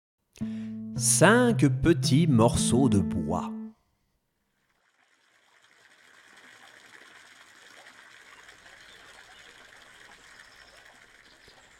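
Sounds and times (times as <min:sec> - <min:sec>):
speech: 0:00.4 - 0:03.6
flowing river water: 0:04.7 - 0:11.7.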